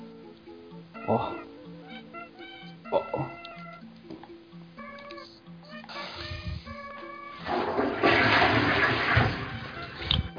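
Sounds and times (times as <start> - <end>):
speech: 1.1 - 1.5
toilet flushing: 7.4 - 10.1.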